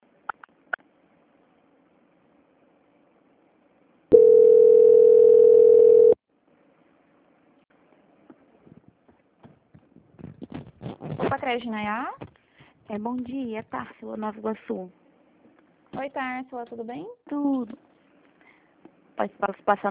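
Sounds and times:
phone call transfer tone beep: 4.1s - 6.2s
speech: 11.5s - 12.3s, 12.9s - 15.0s, 16.0s - 17.8s, 19.2s - 19.9s.

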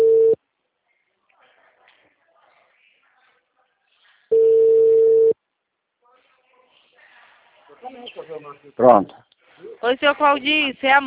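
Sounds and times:
telephone ringback tone of an outgoing call: 0.0s - 0.4s, 4.3s - 5.4s
speech: 8.4s - 11.0s.

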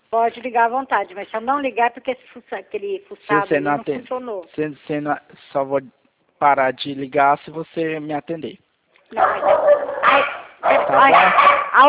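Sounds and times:
speech: 0.1s - 11.8s
two dogs barking at home: 9.2s - 11.8s.

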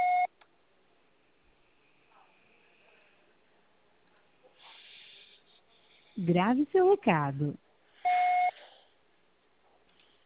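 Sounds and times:
electronic beep from a telephone voicemail recorder: 0.0s - 0.3s, 8.1s - 8.5s
speech: 6.2s - 7.6s.

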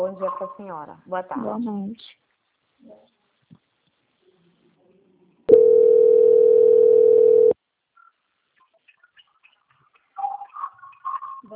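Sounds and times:
speech: 0.0s - 2.2s, 2.8s - 3.2s
steady telephone hold tone during call transfer: 5.5s - 7.6s.

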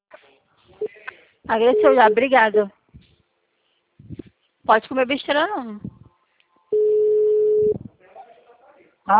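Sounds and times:
speech: 1.5s - 2.8s, 4.7s - 5.9s
telephone tone after a dropped call: 6.7s - 7.8s.

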